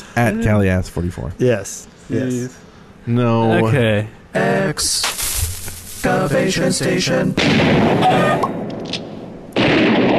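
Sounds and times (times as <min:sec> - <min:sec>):
speech: 0:00.2 - 0:05.2, 0:06.0 - 0:09.0
explosions and heavy blasts: 0:07.4 - 0:10.1
loud dense gunfire: 0:07.4 - 0:10.1.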